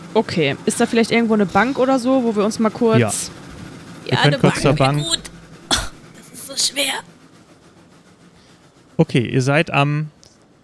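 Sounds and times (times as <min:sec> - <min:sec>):
train rumbling, starting to move off from a platform: 0:00.0 - 0:10.6
speech: 0:00.2 - 0:03.4, 0:04.0 - 0:05.3, 0:06.6 - 0:07.1, 0:09.0 - 0:10.2.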